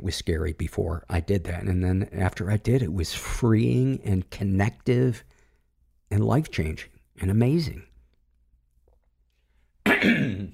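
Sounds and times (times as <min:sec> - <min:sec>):
speech: 0:00.0 - 0:05.3, 0:06.1 - 0:07.9, 0:10.0 - 0:10.5
loud rasping throat clearing with a cough-like burst: 0:09.8 - 0:10.5.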